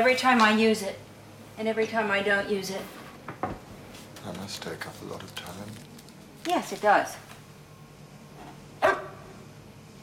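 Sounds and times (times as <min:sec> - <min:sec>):
speech: 0:00.0 - 0:03.0, 0:04.2 - 0:07.3
dog barking in a home kitchen: 0:08.8 - 0:09.4.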